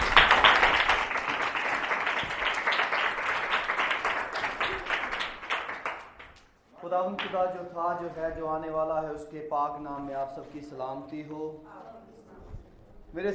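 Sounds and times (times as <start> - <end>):
congregation applause at a Christian worship service: 0.0 - 6.6, 7.2 - 7.4
speech: 7.0 - 11.8, 13.1 - 13.3.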